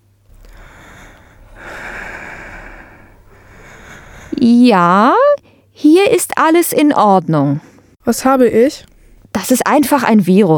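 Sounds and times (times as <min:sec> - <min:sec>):
low hum: 0:00.0 - 0:10.5
deep breathing in and out during a doctor's chest examination: 0:00.3 - 0:04.4
speech: 0:04.4 - 0:05.2, 0:05.9 - 0:10.5.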